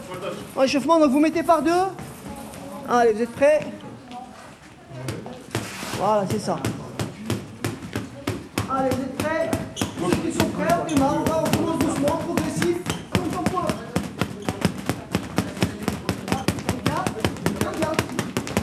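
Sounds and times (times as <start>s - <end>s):
speech: 0.3s - 2.0s, 2.9s - 3.8s, 6.0s - 6.8s, 8.7s - 12.8s
gloved punches thudding on well-worn punching bags during boxing gym warm-up: 6.5s - 18.6s.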